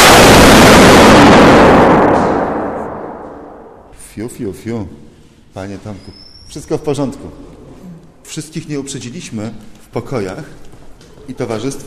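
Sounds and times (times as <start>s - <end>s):
chemical firework explosion bang in a chemistry experiment: 0.0s - 3.9s
speech: 4.2s - 7.6s, 8.3s - 11.8s.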